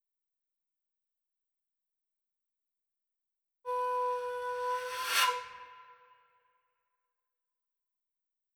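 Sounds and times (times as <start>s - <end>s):
shakuhachi flute: 3.7s - 6.5s.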